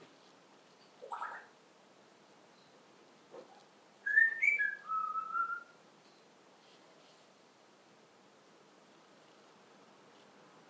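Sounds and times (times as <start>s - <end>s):
parrot whistling: 1.1s - 1.5s, 4.0s - 5.8s.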